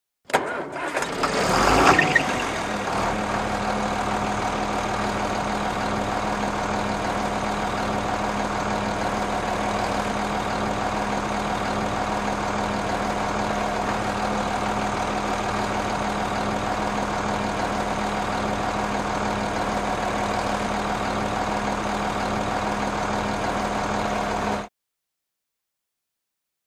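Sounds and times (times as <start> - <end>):
tractor starting and idling: 0.3 - 24.7.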